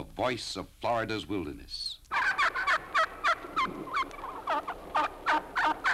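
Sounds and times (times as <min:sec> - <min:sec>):
speech: 0:00.2 - 0:02.0
Florida wild turkey gobbling: 0:02.1 - 0:05.9.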